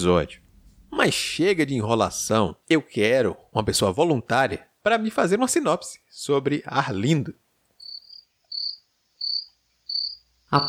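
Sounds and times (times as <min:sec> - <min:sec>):
speech: 0:00.0 - 0:00.4, 0:01.0 - 0:07.4
crickets chirping: 0:07.8 - 0:10.6.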